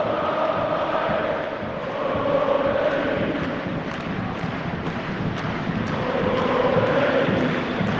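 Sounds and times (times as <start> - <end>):
football fans chanting in a stadium: 0.0 - 4.3, 5.9 - 7.9
football fans roaring in a stadium: 0.0 - 7.9.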